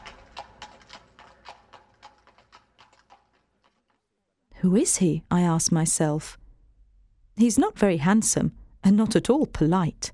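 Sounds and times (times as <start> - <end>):
ridden horse hooves clip-clopping as the rider leaves: 0.0 - 4.0
speech: 4.6 - 6.4, 7.4 - 10.1.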